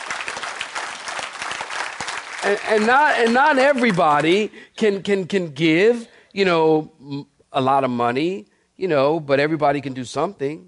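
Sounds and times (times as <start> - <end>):
audience clapping hands: 0.0 - 4.5
speech: 2.4 - 10.6.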